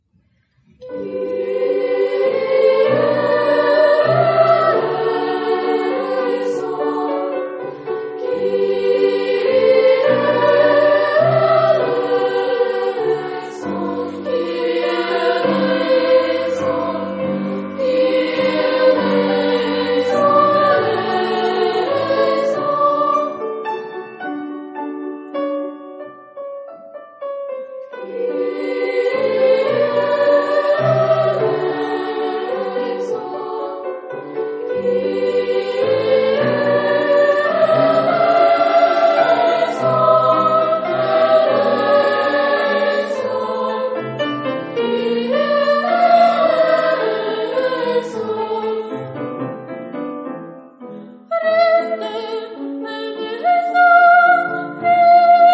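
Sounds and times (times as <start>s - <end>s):
senior school choir singing a mass: 0.8s - 24.7s, 28.0s - 49.5s, 51.3s - 55.5s.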